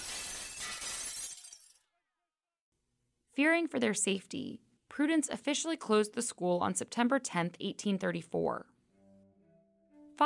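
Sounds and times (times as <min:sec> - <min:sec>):
glass window shattering: 0:00.0 - 0:01.9
tinkling glass shards: 0:00.0 - 0:01.9
speech: 0:03.4 - 0:08.7.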